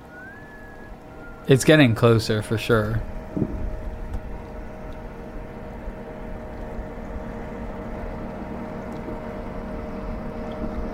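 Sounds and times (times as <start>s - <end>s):
steady whistling tone from a boat on a river: 0.0s - 3.8s
low rumbling churn of a boat on a river: 0.0s - 10.9s
speech: 1.5s - 3.6s.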